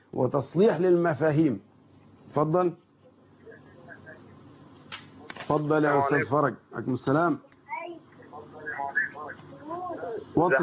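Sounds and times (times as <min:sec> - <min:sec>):
speech: 0:00.1 - 0:01.7, 0:02.3 - 0:02.8, 0:05.5 - 0:07.5, 0:10.4 - 0:10.6
television playing in background of phone call: 0:02.9 - 0:10.6
tinny voices through a telephone line: 0:03.3 - 0:06.3, 0:07.6 - 0:10.6.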